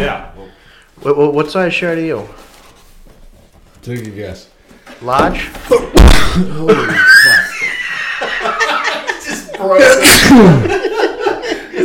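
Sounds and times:
speech: 0:01.0 - 0:02.5, 0:03.8 - 0:07.2, 0:09.6 - 0:10.8
people laughing: 0:05.7 - 0:11.8
excited voices: 0:06.6 - 0:10.7
sneeze into the microphone: 0:10.0 - 0:10.6.

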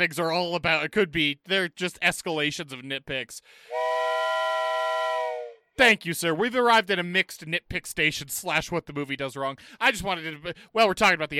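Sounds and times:
speech: 0:00.0 - 0:04.0, 0:05.8 - 0:11.3
steam train whistle: 0:03.7 - 0:05.6.

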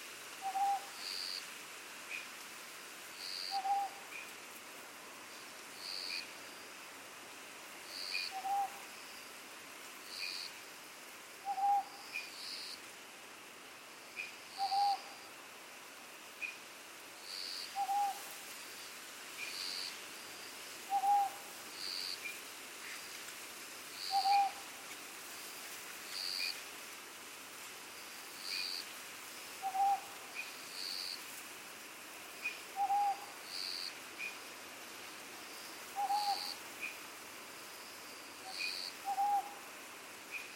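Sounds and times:
owl hooting on Iriomote Island Okinawa Japan: 0:00.4 - 0:01.0, 0:03.4 - 0:04.0, 0:08.1 - 0:08.8, 0:11.4 - 0:12.0, 0:14.6 - 0:15.1, 0:17.7 - 0:18.2, 0:20.9 - 0:21.4, 0:24.0 - 0:24.6, 0:29.6 - 0:30.1, 0:32.4 - 0:33.3, 0:36.0 - 0:36.6, 0:38.4 - 0:39.6
night insects chirring with a dense high hiss: 0:02.1 - 0:04.4, 0:05.2 - 0:06.9, 0:07.8 - 0:12.9, 0:14.0 - 0:27.0, 0:27.8 - 0:31.4, 0:32.0 - 0:40.5.

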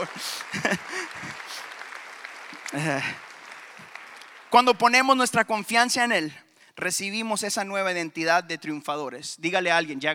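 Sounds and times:
speech: 0:00.0 - 0:00.9, 0:02.7 - 0:03.3, 0:04.5 - 0:10.1
laughter: 0:00.0 - 0:01.6
audience applause: 0:00.0 - 0:05.1.

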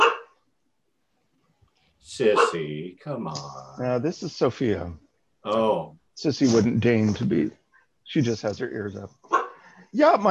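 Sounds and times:
greyhound barking: 0:00.0 - 0:00.4, 0:02.3 - 0:02.7, 0:09.3 - 0:09.6
speech: 0:02.1 - 0:09.3, 0:09.9 - 0:10.2.

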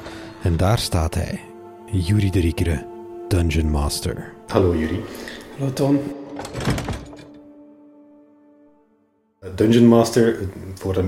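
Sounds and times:
speech: 0:00.4 - 0:06.8, 0:09.6 - 0:11.0
door latch and handle rattling clunk: 0:06.3 - 0:07.5.

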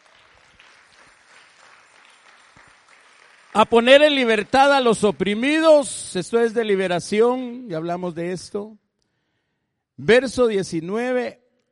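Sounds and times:
church audience clapping hands: 0:00.0 - 0:05.3
speech: 0:03.6 - 0:08.8, 0:10.0 - 0:11.4.

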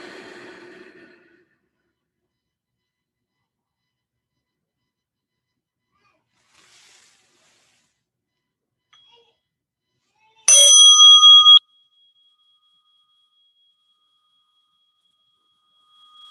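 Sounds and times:
soft breathy sound: 0:00.0 - 0:01.4
single bright bell struck once: 0:10.5 - 0:11.6.

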